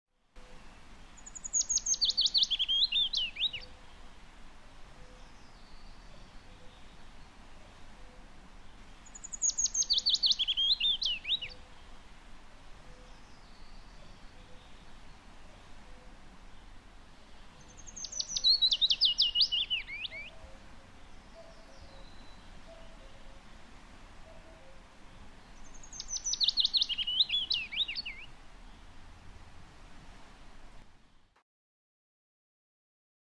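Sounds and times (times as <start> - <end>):
willow warbler: 0.4 - 29.8.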